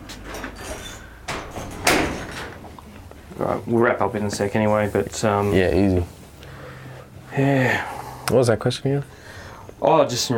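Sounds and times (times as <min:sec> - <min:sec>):
sliding door thudding shut: 0:00.1 - 0:02.6
low hum: 0:00.3 - 0:10.3
speech: 0:03.4 - 0:06.2, 0:07.4 - 0:10.3.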